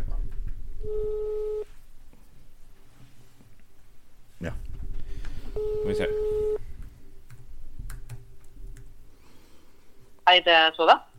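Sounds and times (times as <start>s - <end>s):
electronic ringback tone of an outgoing phone call: 0.8s - 1.7s, 5.6s - 6.6s
speech: 10.3s - 11.1s.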